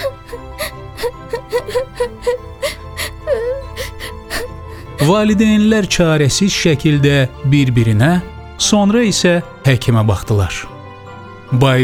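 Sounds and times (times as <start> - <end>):
person sobbing and wailing: 0.0 - 5.8
speech: 5.0 - 10.7, 11.5 - 11.8.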